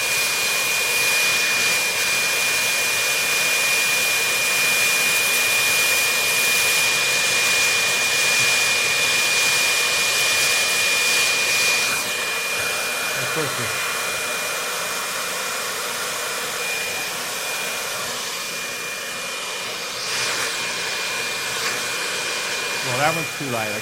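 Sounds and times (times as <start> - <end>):
leaf blower running with a soccer ball on its airstream: 0.0 - 23.8
speech: 23.1 - 23.8.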